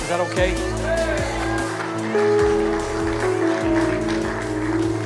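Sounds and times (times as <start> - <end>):
speech: 0.1 - 0.8
scattered clapping from a small group of audience members: 1.2 - 5.0.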